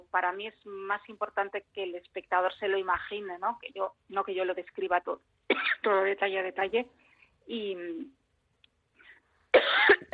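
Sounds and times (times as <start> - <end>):
speech: 0.1 - 8.2, 9.5 - 10.1
person coughing: 5.5 - 5.9, 9.6 - 10.1.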